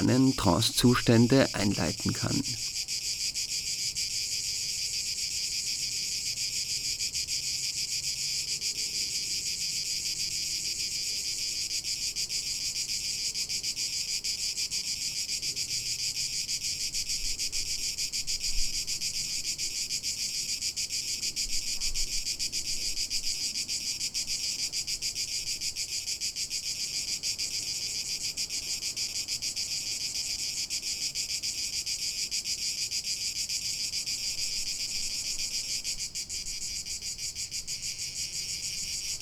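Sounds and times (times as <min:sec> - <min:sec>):
cicadas buzzing: 0:00.0 - 0:39.2
speech: 0:00.1 - 0:02.9.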